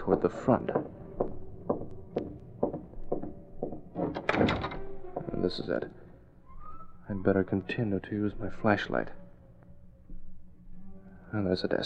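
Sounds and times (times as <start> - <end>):
speech: 0.1 - 1.0, 5.4 - 6.0, 7.1 - 9.2, 11.3 - 11.8
apartment service door being unlocked with a skeleton key and opened: 2.7 - 5.8.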